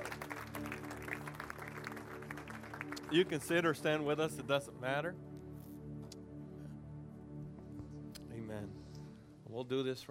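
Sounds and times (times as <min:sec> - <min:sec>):
audience clapping hands: 0:00.0 - 0:04.1
speech: 0:03.1 - 0:05.3, 0:09.6 - 0:10.0.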